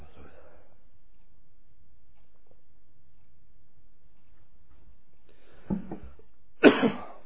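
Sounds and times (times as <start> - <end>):
person with a slight cough coughing: 6.6 - 7.2.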